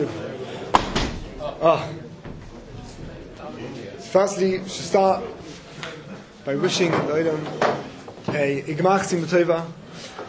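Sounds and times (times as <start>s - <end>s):
faint murmuring voices in the room: 0.0s - 10.2s
door slamming shut: 0.7s - 1.5s
speech: 1.6s - 2.0s, 4.1s - 5.4s, 6.4s - 10.1s.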